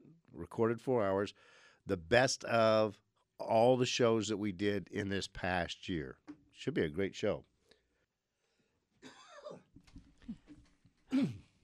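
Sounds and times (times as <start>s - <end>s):
speech: 0.5s - 7.5s
person clearing throat in rough gravelly bursts: 9.0s - 11.6s.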